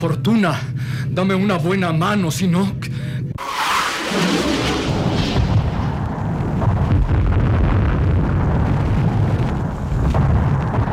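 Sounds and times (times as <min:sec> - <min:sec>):
speech: 0:00.0 - 0:02.9
gunfire and explosions from a space battle between ships: 0:03.8 - 0:10.9.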